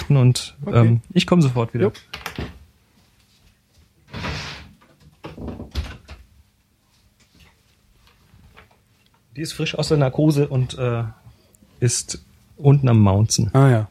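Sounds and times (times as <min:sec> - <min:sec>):
speech: 0:00.1 - 0:02.2, 0:09.4 - 0:11.2, 0:11.8 - 0:13.8
door being pushed shut: 0:04.1 - 0:06.2
door handling knocks and rattles: 0:04.8 - 0:06.3.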